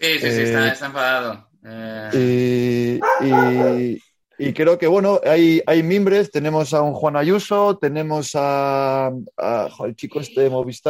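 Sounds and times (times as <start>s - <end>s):
speech: 0.0s - 2.5s, 3.2s - 10.8s
angry dog barking: 3.0s - 3.9s.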